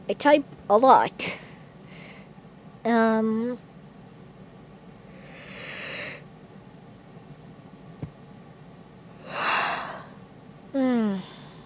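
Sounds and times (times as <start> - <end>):
speech: 0.1 - 1.4, 2.8 - 3.7, 10.8 - 11.3
person yawning: 9.2 - 10.1, 10.8 - 11.6.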